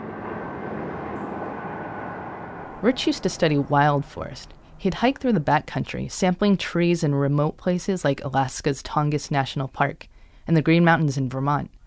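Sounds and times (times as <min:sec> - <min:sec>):
airplane engine roar as planes take off across the bay: 0:00.0 - 0:05.7
speech: 0:02.8 - 0:11.8.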